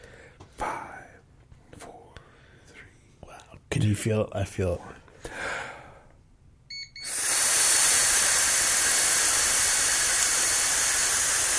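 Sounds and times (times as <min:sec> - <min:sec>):
speech: 0:03.8 - 0:05.4
short burst of breathy airflow: 0:05.2 - 0:06.1, 0:07.0 - 0:11.5
electronic beep from a breathalyzer: 0:06.7 - 0:07.4
person blowing forcefully into a breathalyzer: 0:07.0 - 0:11.5.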